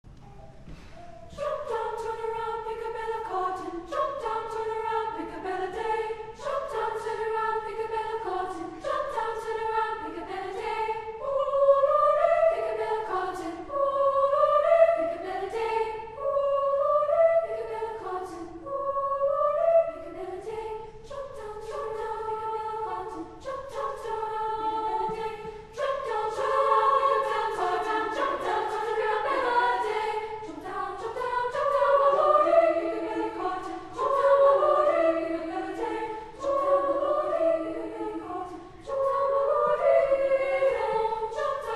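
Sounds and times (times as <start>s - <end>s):
women's choir singing a cappella: 0.7s - 41.7s.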